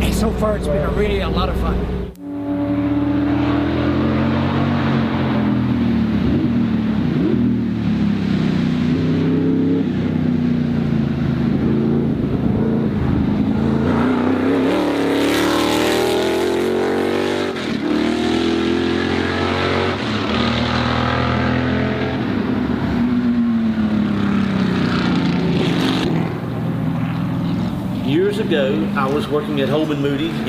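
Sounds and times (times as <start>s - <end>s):
vintage Can-Am race car engine droning while driven and shifting gears: 0.0s - 30.4s
speech: 0.2s - 2.2s, 28.5s - 30.4s.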